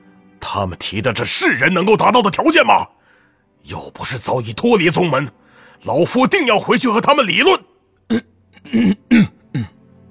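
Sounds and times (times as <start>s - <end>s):
speech: 0.5s - 3.0s, 3.6s - 9.3s
young man coughing: 8.1s - 9.8s.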